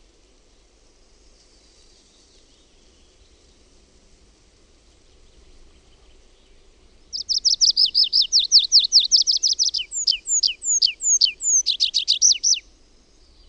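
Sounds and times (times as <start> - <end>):
tree pipit singing: 5.3 - 13.4.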